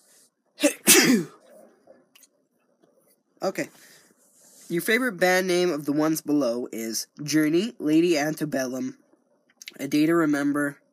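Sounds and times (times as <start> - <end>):
person sneezing: 0.6 - 1.5
speech: 3.4 - 3.9, 4.7 - 9.0, 9.7 - 10.8.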